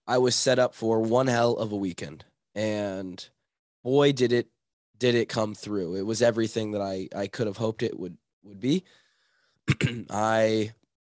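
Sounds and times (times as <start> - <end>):
speech: 0.1 - 9.0, 9.7 - 10.8
person clearing throat: 9.6 - 10.2.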